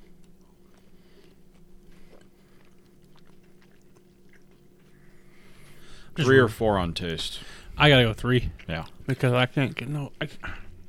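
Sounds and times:
biting and chewing a crunchy honey-flavored snack: 0.0 - 5.2
low hum: 0.0 - 10.8
speech: 6.2 - 10.6.

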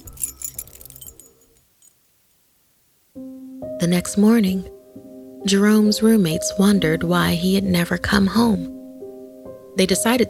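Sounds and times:
keys jangling while unlocking a door: 0.0 - 2.0
speech: 3.8 - 4.8, 5.4 - 8.7, 9.8 - 10.2.

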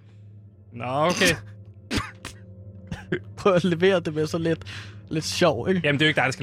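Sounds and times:
speech: 0.7 - 1.5, 3.1 - 6.4
person clearing throat: 1.1 - 3.2.

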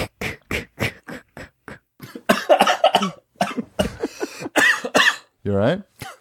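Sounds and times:
person cough-laughing with sharp barking bursts: 2.0 - 5.3
speech: 5.5 - 5.9.

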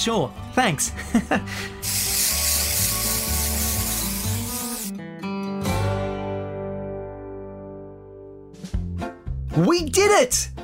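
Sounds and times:
speech: 0.0 - 2.2, 9.6 - 10.5
ringing music: 0.0 - 10.6
antiperspirant aerosol spray hissing: 1.6 - 4.9.

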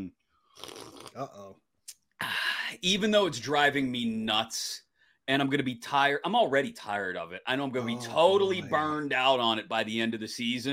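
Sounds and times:
slurping and gulping a drink: 0.6 - 1.2
speech: 0.6 - 10.7.

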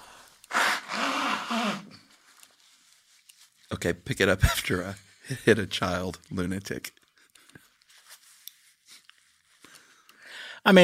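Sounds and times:
nose blowing: 0.4 - 2.2
speech: 3.7 - 7.0, 10.6 - 10.8.

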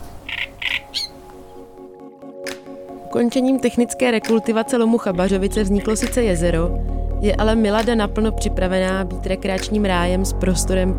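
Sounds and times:
wild birds squawking at a lake: 0.0 - 1.7
speech: 3.1 - 10.9.

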